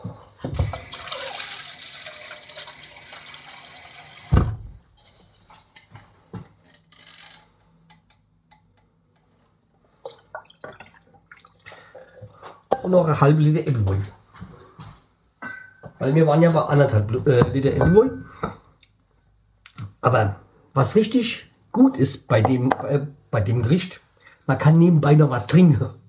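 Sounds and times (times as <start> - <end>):
water pouring into a cooking pot: 0.7 - 5.8
knocks and drips: 10.0 - 11.5
speech: 12.9 - 14.2, 16.0 - 18.6, 20.0 - 26.0.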